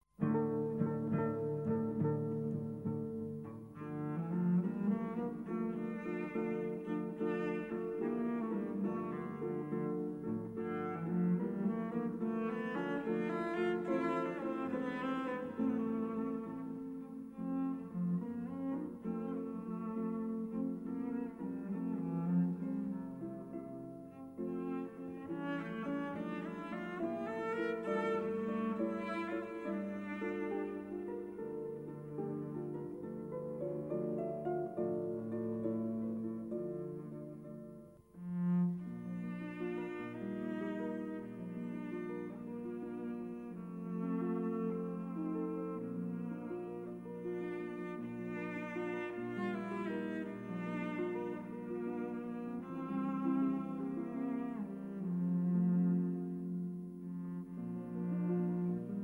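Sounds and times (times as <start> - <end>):
cello: 0.0 - 59.0
harp: 0.2 - 59.0.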